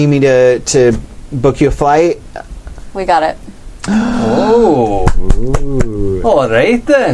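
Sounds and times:
speech: 0:00.0 - 0:02.2, 0:02.9 - 0:07.1
person letting out a gleeful squeal: 0:03.8 - 0:06.2
sharp happy hand claps: 0:04.9 - 0:06.0.

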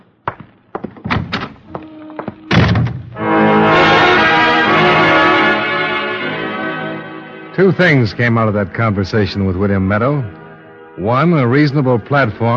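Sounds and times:
wooden knocks and thuds: 0:00.0 - 0:03.2
heavy door slamming shut: 0:01.0 - 0:03.2
dramatic music: 0:01.9 - 0:12.5
speech: 0:07.6 - 0:10.4, 0:11.0 - 0:12.5.

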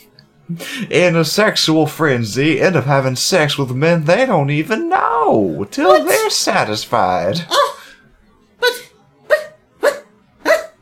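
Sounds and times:
speech: 0:00.5 - 0:07.7
dog barking: 0:09.3 - 0:10.8.

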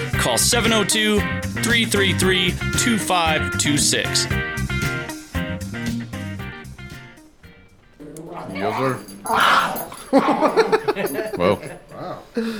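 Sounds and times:
speech: 0:00.2 - 0:04.6, 0:08.8 - 0:09.5, 0:10.1 - 0:11.8, 0:12.4 - 0:12.5
dog growling: 0:07.9 - 0:12.4
dog yipping and whimpering during play: 0:08.0 - 0:10.7
human voices: 0:08.0 - 0:12.5
laughter: 0:09.9 - 0:12.5.

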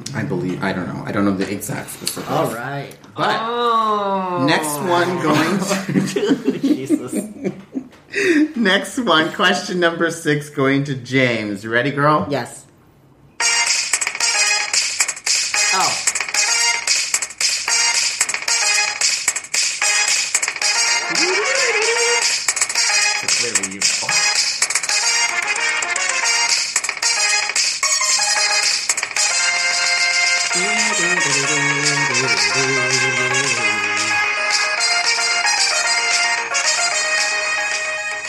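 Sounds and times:
speech: 0:00.2 - 0:12.6
synthesized racing video game soundtrack music: 0:04.6 - 0:05.9, 0:13.4 - 0:38.2
laughter: 0:04.6 - 0:08.4, 0:21.0 - 0:22.2.

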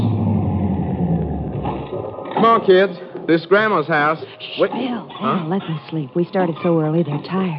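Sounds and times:
blue sedan engine rumbling as car rolls to a stop: 0:00.0 - 0:02.6
speech: 0:02.4 - 0:07.5.

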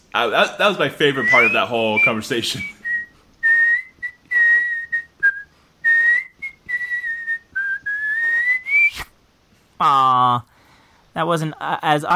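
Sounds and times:
speech: 0:00.2 - 0:02.8, 0:11.2 - 0:12.1
person whistling a wandering tune with lips: 0:01.2 - 0:09.0.

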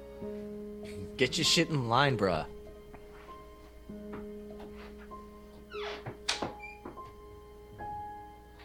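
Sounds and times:
steady low electrical hum: 0:00.0 - 0:08.6
speech: 0:01.2 - 0:02.6
man closing a door with dull thunks: 0:05.7 - 0:07.2.

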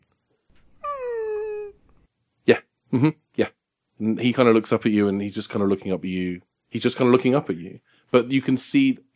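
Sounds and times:
dog whimpering with a thin high whine: 0:00.8 - 0:01.8
speech: 0:02.5 - 0:09.1.

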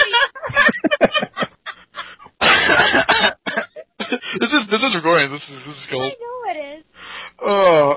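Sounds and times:
laughter: 0:00.0 - 0:06.1
person clearing throat and coughing to clear something stuck: 0:02.4 - 0:04.9
speech: 0:05.1 - 0:06.3, 0:07.5 - 0:07.9.

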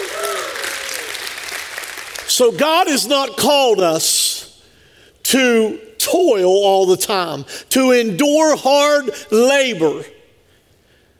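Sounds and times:
crowd applause: 0:00.0 - 0:02.3
speech: 0:02.4 - 0:04.4, 0:05.2 - 0:10.2.

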